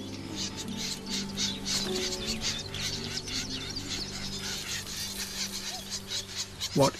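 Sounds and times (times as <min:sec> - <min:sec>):
reed warblers giving harsh scolding mobbing calls: 0:00.0 - 0:06.9
speech: 0:06.8 - 0:06.9.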